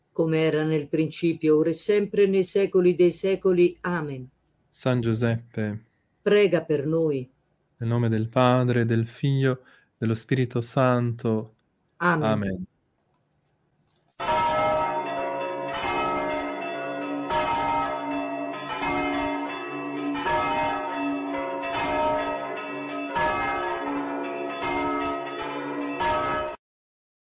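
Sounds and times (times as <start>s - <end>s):
speech: 0.2s - 12.7s
Easter church bells pealing: 14.2s - 26.6s.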